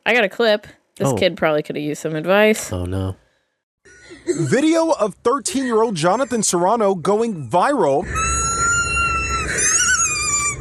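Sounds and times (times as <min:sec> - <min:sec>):
speech: 0:00.1 - 0:03.2, 0:04.2 - 0:08.4
squeaky dog toy being chewed: 0:05.5 - 0:10.5.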